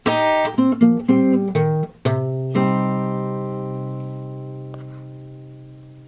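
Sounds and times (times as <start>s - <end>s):
guitar minor embellishment lick in A shape: 0.0s - 6.0s.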